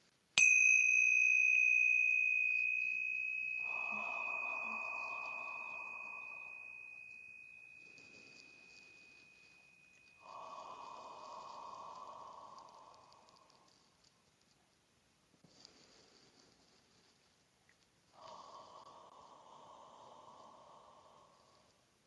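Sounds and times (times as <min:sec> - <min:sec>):
tingsha bells ringing: 0:00.4 - 0:13.6
soft breathing: 0:02.4 - 0:14.2, 0:15.4 - 0:17.2, 0:18.1 - 0:22.0.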